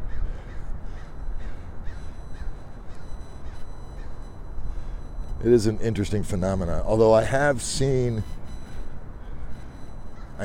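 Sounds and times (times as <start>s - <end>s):
crows cawing: 0.0s - 4.2s, 10.1s - 10.4s
speech: 5.4s - 8.4s.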